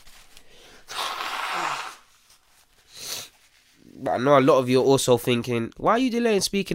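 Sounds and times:
person blowing nose: 0:00.5 - 0:03.5
speech: 0:04.0 - 0:06.7.

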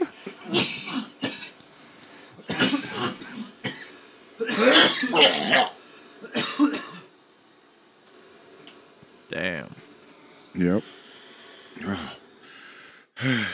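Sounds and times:
heavy hacking coughs with throat-clearing rasp: 0:00.0 - 0:01.6, 0:02.5 - 0:07.0
speech: 0:05.0 - 0:05.8, 0:10.6 - 0:11.0.

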